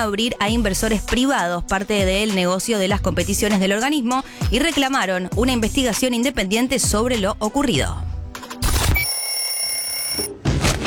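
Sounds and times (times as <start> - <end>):
speech: 0.0 - 8.1
alarm clock bell ringing: 9.0 - 10.3.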